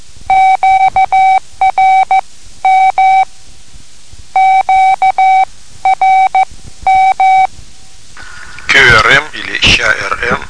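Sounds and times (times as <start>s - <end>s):
Morse code beeps of the letters QRM: 0.3s - 3.3s, 4.4s - 7.5s
person speaking: 8.2s - 10.4s.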